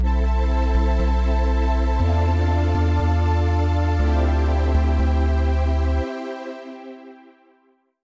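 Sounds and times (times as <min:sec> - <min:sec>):
dissonant music with bass: 0:00.0 - 0:07.3.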